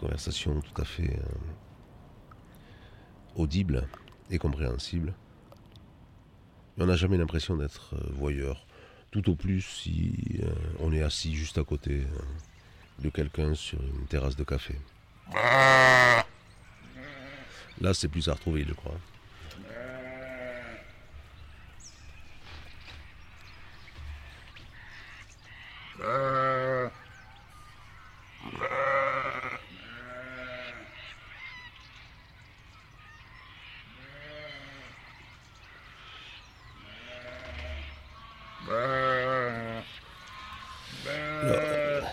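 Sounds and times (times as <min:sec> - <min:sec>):
speech: 0:00.0 - 0:01.6, 0:03.4 - 0:05.2, 0:06.8 - 0:16.2, 0:17.8 - 0:19.7, 0:26.0 - 0:26.4
Suffolk sheep bleating at feeding time: 0:15.3 - 0:17.6, 0:19.6 - 0:21.0, 0:25.9 - 0:27.0, 0:28.4 - 0:31.0, 0:33.9 - 0:35.0, 0:36.8 - 0:42.1.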